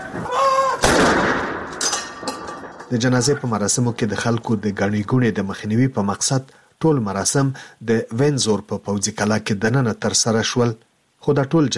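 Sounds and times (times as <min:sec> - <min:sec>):
cannon gun salute at a royal military funeral at a castle: 0:00.8 - 0:01.8
speech: 0:02.9 - 0:11.7.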